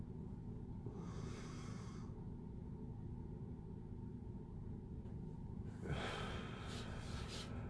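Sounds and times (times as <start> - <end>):
steady low rumble: 0.0 - 7.6
slow deep breathing exercise breaths: 0.8 - 2.3, 5.8 - 7.6.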